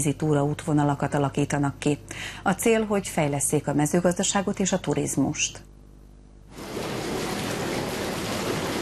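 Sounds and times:
speech: 0.0 - 5.7
jacuzzi water churning and bubbling: 6.5 - 8.8.

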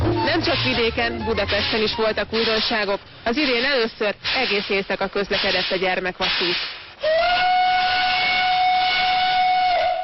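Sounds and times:
steam locomotive whistle: 0.0 - 2.9, 5.4 - 10.0
speech: 0.4 - 7.2
hiss of steam: 0.5 - 8.5.

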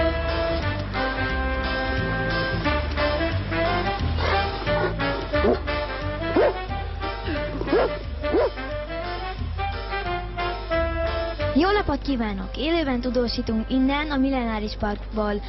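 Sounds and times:
rhythmic musical backing with a thumping bass line: 0.0 - 12.2
dog barking and yipping: 4.2 - 5.7, 6.3 - 6.7, 7.5 - 8.7
speech: 11.9 - 15.4.

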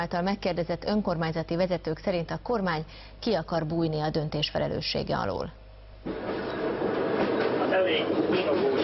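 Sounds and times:
speech: 0.0 - 6.4, 7.9 - 8.8
train rumbling slowly along poor track between Újszeged and Békéscsaba: 6.1 - 8.8.

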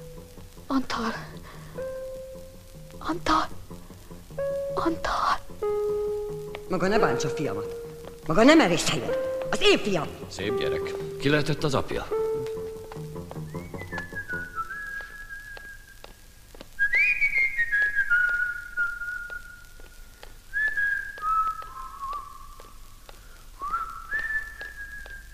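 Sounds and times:
speech: 0.7 - 1.4, 3.0 - 3.6, 4.4 - 6.0, 6.7 - 12.2
person whistling a slow melody: 13.4 - 16.0, 16.8 - 19.7, 20.5 - 22.6, 23.6 - 25.3.

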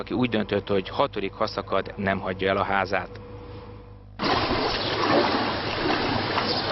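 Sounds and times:
speech: 0.0 - 3.2
water splashing and churning through a flooded residential street in Borsod Hungary: 4.2 - 6.6.

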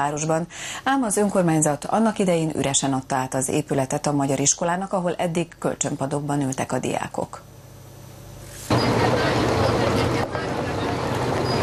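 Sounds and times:
speech: 0.0 - 7.5
40-ton truck engine roar rolling into a yard: 8.7 - 11.6.

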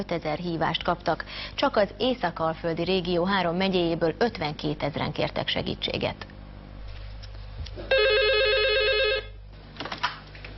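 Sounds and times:
speech: 0.0 - 6.4
low hum: 0.0 - 10.5
telephone at an emotional first-aid helpline ringing with electronic trill: 7.9 - 9.4.

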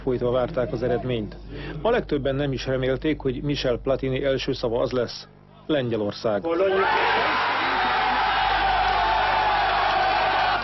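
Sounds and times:
speech: 0.0 - 7.2
large crowd cheering wildly in a town square: 6.6 - 10.6.

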